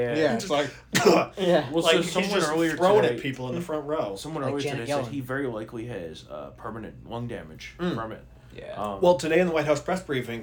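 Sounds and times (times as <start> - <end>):
speech: 0.0 - 10.4
voice mimicking a muffled cough into a hand: 0.9 - 1.4.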